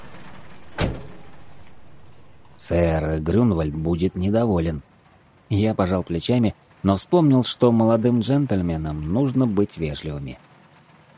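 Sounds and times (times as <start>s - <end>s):
outdoor street noise hum: 0.0s - 11.1s
cab door opening: 0.6s - 1.7s
speech: 2.7s - 4.9s, 5.5s - 10.5s.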